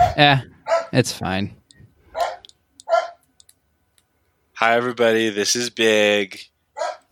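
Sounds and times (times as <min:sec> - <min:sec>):
speech: 0:00.2 - 0:01.6, 0:04.6 - 0:06.5
dog barking: 0:00.6 - 0:01.0, 0:02.1 - 0:03.2, 0:06.8 - 0:07.1
faint small clicks: 0:02.4 - 0:04.1.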